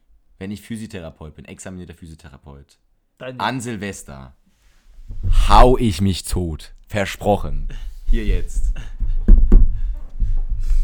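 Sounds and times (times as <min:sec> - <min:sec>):
speech: 0:00.4 - 0:04.4, 0:05.1 - 0:09.0
knocking on wood: 0:08.1 - 0:10.8
laughter: 0:08.4 - 0:09.3.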